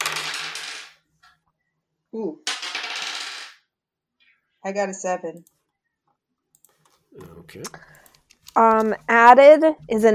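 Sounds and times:
two dice rattling across a hard tabletop: 0:00.0 - 0:01.0, 0:02.4 - 0:03.6
speech: 0:02.1 - 0:02.5, 0:04.6 - 0:05.6, 0:07.2 - 0:10.1.

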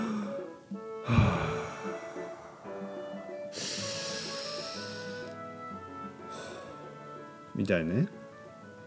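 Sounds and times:
deep yoga-style breathing: 0:00.0 - 0:05.4, 0:06.2 - 0:07.0
speech: 0:07.6 - 0:08.2.

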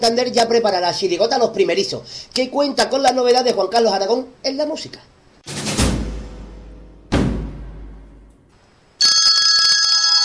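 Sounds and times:
speech: 0:00.0 - 0:05.6
deep booming hits: 0:05.4 - 0:08.4
telephone ringing for an incoming call: 0:09.0 - 0:10.2.

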